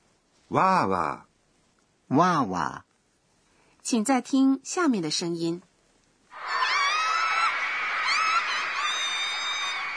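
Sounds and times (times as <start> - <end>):
speech: 0.5 - 1.3, 2.1 - 2.9, 3.9 - 5.7
girls screaming excitedly at the sight of their idol: 6.4 - 9.9.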